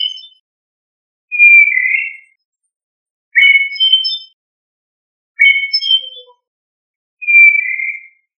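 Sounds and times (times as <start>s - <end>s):
Turdidae thrush singing short clear whistled phrases: 0.0s - 0.4s, 1.3s - 2.5s, 3.4s - 4.4s, 5.4s - 6.4s, 7.2s - 8.3s.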